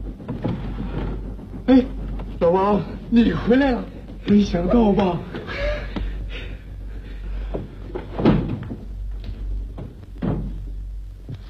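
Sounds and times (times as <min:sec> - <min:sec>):
door being opened with soft wooden clunks and rattles: 0:00.0 - 0:02.4, 0:07.5 - 0:08.9, 0:09.7 - 0:10.6
speech: 0:01.7 - 0:05.7.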